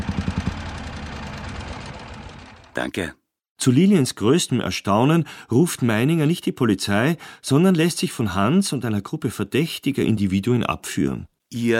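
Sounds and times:
car engine running: 0.0 - 2.8
speech: 2.8 - 11.7.

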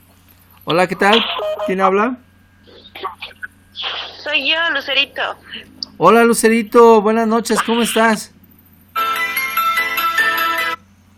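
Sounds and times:
speech: 0.7 - 2.3, 3.8 - 8.4
electronic telephone ringtone for an incoming call: 1.3 - 1.9, 9.0 - 10.8.

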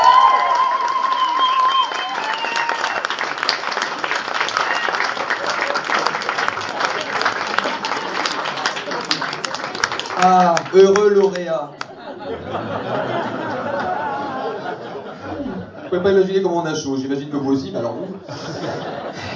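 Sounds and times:
audience applause at an award ceremony during a comics festival: 0.0 - 15.2
laughter: 5.2 - 9.8, 10.8 - 16.4, 17.6 - 19.3
speech: 10.2 - 11.8, 15.9 - 19.3.

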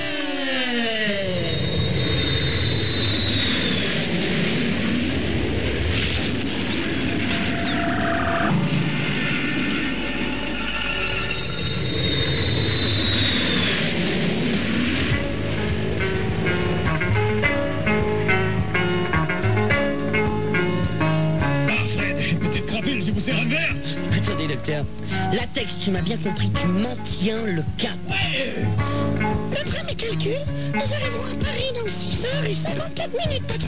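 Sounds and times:
whining airplane engine tones: 0.0 - 21.6
repaired airplane engine roaring during takeoff: 0.0 - 32.8
speech: 25.6 - 33.6.

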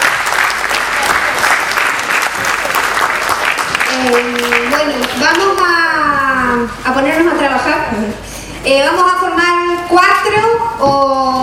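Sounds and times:
audience clapping at an agroecology workshop presentation: 0.0 - 5.7
speech: 6.6 - 11.0.

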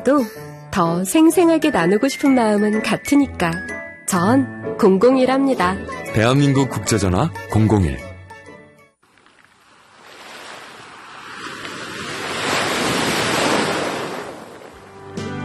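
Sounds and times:
speech: 0.0 - 8.1
wind: 9.0 - 15.1
ocean surf with wind: 9.1 - 15.1.

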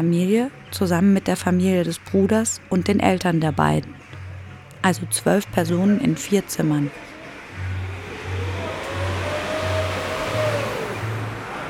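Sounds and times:
speech: 0.0 - 4.0, 4.8 - 7.1
car driving on the road to Mitrovica in Kosovo: 7.0 - 11.6.

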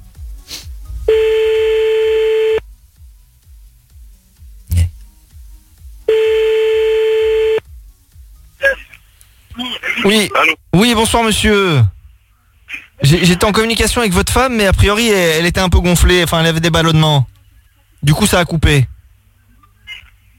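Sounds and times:
telephone ringback tone calling someone back: 1.1 - 2.6, 6.1 - 7.6
speech: 10.0 - 11.9, 13.0 - 17.3, 18.0 - 18.9.

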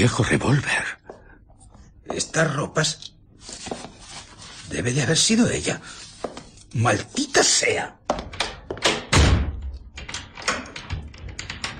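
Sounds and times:
speech: 0.0 - 1.0, 2.2 - 3.8, 4.7 - 8.0
door being shut: 8.1 - 11.6
sharp knocks, clatter and rattling: 8.1 - 11.7
door being locked with a key: 9.8 - 11.7.

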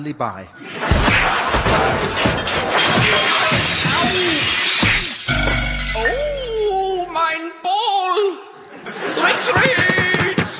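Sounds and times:
speech: 0.0 - 4.6, 9.2 - 9.9
hammer blows smashing and shattering jackboots in a comic fight: 1.0 - 6.9
crash: 1.0 - 7.2
laughter: 8.6 - 10.5.

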